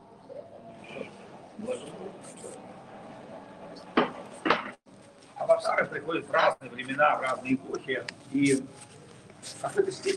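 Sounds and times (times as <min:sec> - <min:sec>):
low murmur of voices: 0:00.0 - 0:10.1
sharp knocks: 0:03.9 - 0:04.8
speech: 0:05.9 - 0:10.1.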